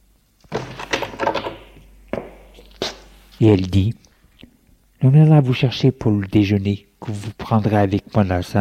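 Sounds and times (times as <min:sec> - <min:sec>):
door shutting with a solid thunk: 0:00.5 - 0:01.8
speech: 0:03.4 - 0:04.0, 0:05.0 - 0:08.5.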